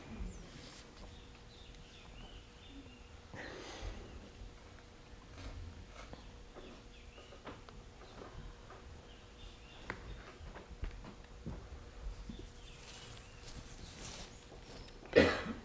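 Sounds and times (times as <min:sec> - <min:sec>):
birds chirping busily: 0:00.0 - 0:04.4, 0:06.1 - 0:10.6, 0:11.2 - 0:15.4
steady rustling ambience: 0:11.0 - 0:14.9.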